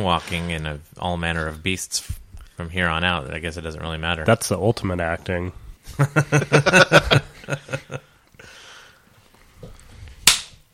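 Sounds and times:
speech: 0:00.0 - 0:08.5
rhythmic laughter: 0:05.8 - 0:08.2
high five hand slap: 0:10.2 - 0:10.6.

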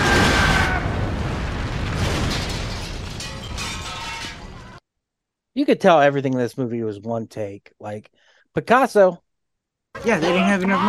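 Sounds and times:
loud booming explosion: 0:00.0 - 0:03.6
debris-like rattles: 0:00.0 - 0:04.8
speech: 0:05.6 - 0:09.2, 0:10.0 - 0:10.8.

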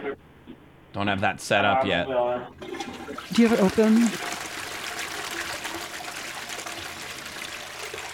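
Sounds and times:
speech: 0:01.0 - 0:04.3
water pouring and splashing onto the floor: 0:02.6 - 0:08.1.

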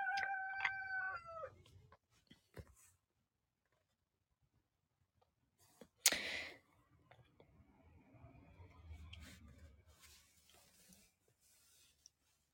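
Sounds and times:
rooster crowing: 0:00.0 - 0:01.5.

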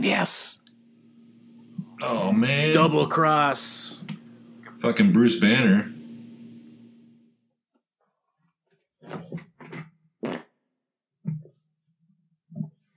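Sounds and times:
speech: 0:00.0 - 0:00.6, 0:02.0 - 0:04.2, 0:04.8 - 0:06.0
long buzzy fart into the microphone: 0:09.1 - 0:10.6.

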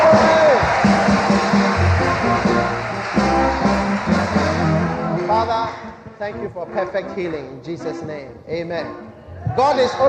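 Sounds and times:
large audience clapping: 0:00.0 - 0:05.4
speech: 0:06.2 - 0:10.0.

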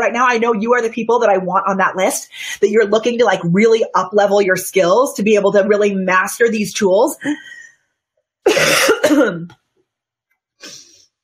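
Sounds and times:
speech: 0:00.0 - 0:07.6, 0:08.4 - 0:09.6
loud raspy cough: 0:08.5 - 0:09.5.

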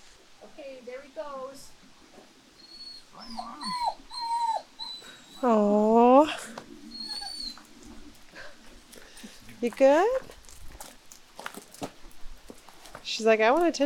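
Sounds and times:
speech: 0:00.4 - 0:02.3, 0:03.2 - 0:04.1, 0:05.4 - 0:06.6, 0:09.6 - 0:10.3, 0:13.2 - 0:13.8
dog whining and whimpering: 0:02.5 - 0:07.8.

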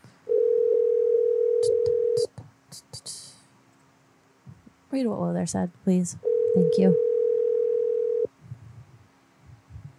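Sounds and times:
telephone tone as a call is placed: 0:00.3 - 0:02.2, 0:06.2 - 0:08.3
speech: 0:04.9 - 0:07.1.

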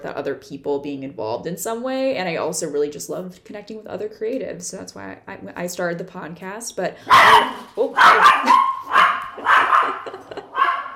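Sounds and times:
speech: 0:00.0 - 0:08.7
small five-pound dog barking: 0:07.1 - 0:10.9
laughter: 0:09.2 - 0:10.8.

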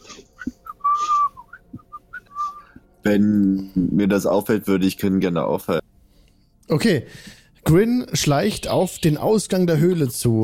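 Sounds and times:
person whistling a tune: 0:00.1 - 0:02.8
speech: 0:03.1 - 0:05.8, 0:06.7 - 0:10.4.

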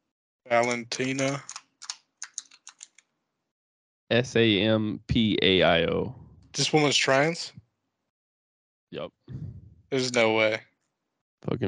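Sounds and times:
speech: 0:00.5 - 0:01.5, 0:04.1 - 0:07.6, 0:08.9 - 0:10.7, 0:11.4 - 0:11.6
typing a name on a computer keyboard: 0:00.6 - 0:03.0.

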